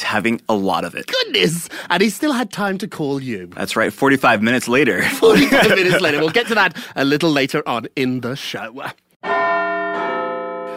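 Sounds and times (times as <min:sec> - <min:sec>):
speech: 0:00.1 - 0:09.5
laughter: 0:05.0 - 0:07.0
large clock bell chiming: 0:09.2 - 0:10.7.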